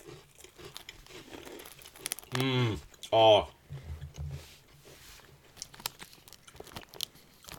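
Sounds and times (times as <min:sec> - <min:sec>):
biting and chewing crunchy chocolate biscuits in Japan: 0:00.0 - 0:03.1, 0:05.5 - 0:07.5
speech: 0:02.4 - 0:03.6.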